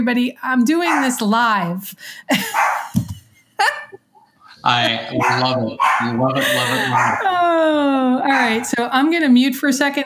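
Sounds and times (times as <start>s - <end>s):
speech: 0.0s - 3.8s, 4.6s - 10.0s
dog barking and yelping: 0.8s - 1.2s, 2.6s - 2.9s, 4.9s - 7.2s, 8.3s - 8.8s
laughter: 2.3s - 8.8s.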